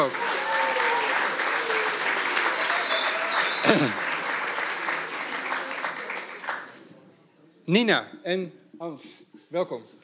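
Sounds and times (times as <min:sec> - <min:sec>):
speech: 0:00.0 - 0:00.3, 0:03.6 - 0:04.0, 0:07.7 - 0:10.0
audience applause: 0:00.0 - 0:06.8.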